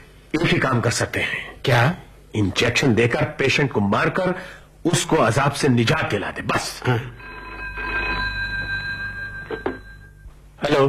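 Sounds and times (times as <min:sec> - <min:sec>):
speech: 0:00.5 - 0:07.2, 0:10.7 - 0:10.8
telephone ringing: 0:07.1 - 0:10.3.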